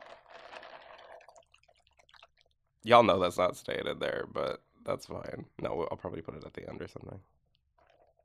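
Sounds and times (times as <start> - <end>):
liquid swirling in a drink cup: 0.0 - 2.6, 7.8 - 8.2
speech: 2.8 - 7.4.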